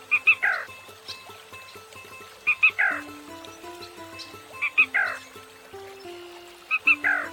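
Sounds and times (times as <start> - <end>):
soft low musical background: 0.0 - 7.3
male black rail three-note territorial mating call: 2.6 - 7.3.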